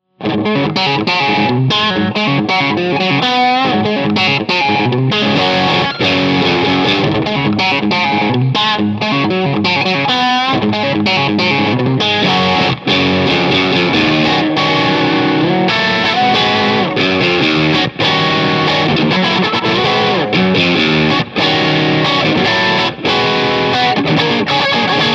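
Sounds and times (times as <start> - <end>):
vintage crunch electric guitar rhythm: 0.0 - 25.1.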